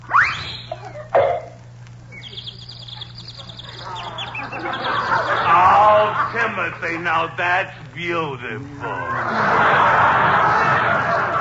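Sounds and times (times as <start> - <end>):
birds chirping in quick repeated bursts: 0.0 - 8.5
laughter: 0.7 - 1.2, 2.1 - 11.3
rustling hissy background: 0.7 - 8.8
speech: 6.4 - 11.1.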